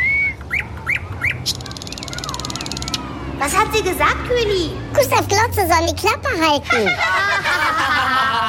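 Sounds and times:
nightingale singing outdoors: 0.2 - 3.4
speech: 3.7 - 7.8
laughter: 6.7 - 8.4.

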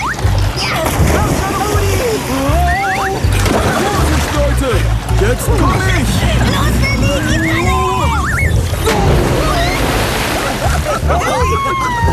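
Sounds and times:
excited high-pitched voices squealing and calling out: 0.0 - 1.0, 2.5 - 4.0, 5.7 - 12.1
laughter: 0.0 - 12.1
water splashing and sloshing in a pool basin: 0.0 - 12.1
speech: 5.3 - 6.8.

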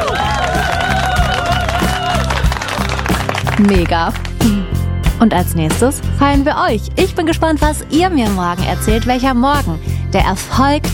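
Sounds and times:
large crowd applauding and cheering: 0.0 - 4.5
upbeat musical backing with a thumping beat: 0.0 - 10.9
speech: 3.6 - 4.6, 5.2 - 10.9.

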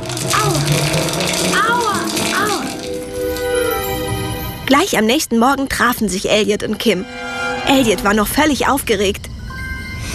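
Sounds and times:
hail pelting down into a running shower: 0.0 - 3.9
speech: 4.7 - 9.3.

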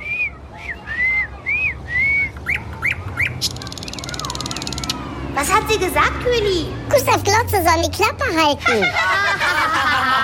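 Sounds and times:
nightingale singing in the city: 1.9 - 5.0
speech: 5.4 - 9.2
laughter: 8.6 - 10.2.

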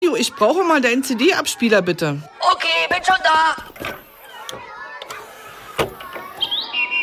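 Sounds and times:
speech: 0.2 - 4.6
common blackbird singing: 6.4 - 7.0.

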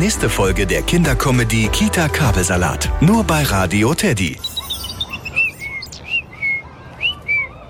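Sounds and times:
speech: 0.0 - 4.5
European robin singing: 3.4 - 7.5.

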